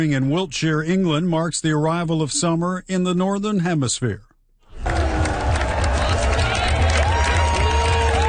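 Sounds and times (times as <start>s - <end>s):
speech: 0.0s - 4.3s
large outdoor crowd cheering and whooping at solstice sunrise: 4.7s - 8.2s
scattered shouts and whistles from the crowd: 4.8s - 8.2s.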